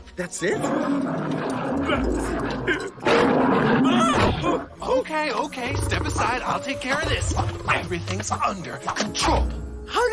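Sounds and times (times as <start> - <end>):
speech: 0.2 - 10.1
lion roaring: 0.5 - 4.8, 5.6 - 8.2.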